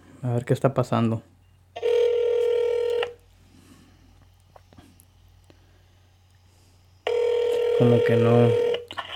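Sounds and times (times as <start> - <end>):
speech: 0.2 - 1.3, 7.8 - 8.7
cell phone call ringback tone: 1.8 - 3.2, 7.0 - 8.9.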